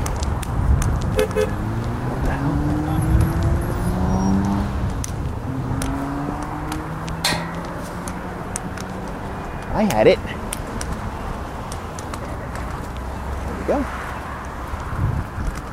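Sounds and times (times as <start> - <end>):
road traffic engines and tyres rumbling: 0.0 - 15.7
short horn toots: 1.2 - 1.6
faint metallic clinks: 7.2 - 7.8
speech: 9.8 - 10.3.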